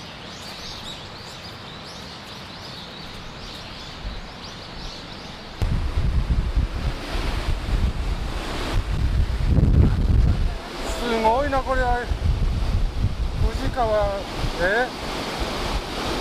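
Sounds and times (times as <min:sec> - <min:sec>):
rushing Fuji River water: 0:00.0 - 0:16.1
gusty low rumbling: 0:05.6 - 0:10.6
people talking: 0:09.9 - 0:12.1, 0:13.4 - 0:14.9.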